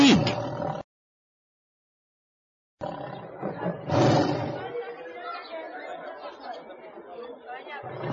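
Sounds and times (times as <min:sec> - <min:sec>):
lions roaring loudly: 0:00.0 - 0:00.8, 0:02.8 - 0:04.8, 0:07.9 - 0:08.1
lion growls and grunts: 0:00.0 - 0:00.9, 0:02.8 - 0:04.8, 0:07.8 - 0:08.1.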